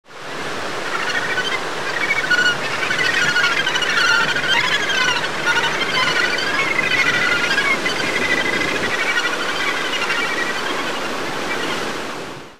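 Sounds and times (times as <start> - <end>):
gannets calling: 0.7 - 12.0.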